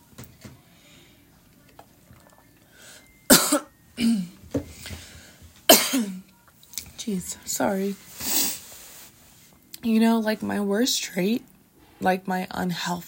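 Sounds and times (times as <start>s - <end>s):
person with a parched throat coughing: 3.3s - 4.4s, 5.7s - 6.2s
speech: 4.0s - 4.3s, 7.1s - 8.1s, 9.8s - 13.0s.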